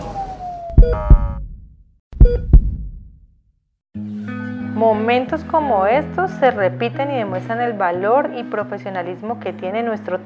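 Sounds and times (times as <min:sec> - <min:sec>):
ambulance siren on an emergency run toward a clinic: 0:00.0 - 0:01.4
speech: 0:04.8 - 0:10.2.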